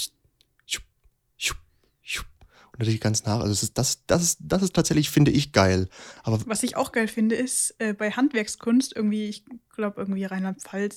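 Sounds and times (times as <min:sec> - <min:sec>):
voice imitating barber scissors snipping: 0:00.0 - 0:02.5
speech: 0:02.8 - 0:10.9.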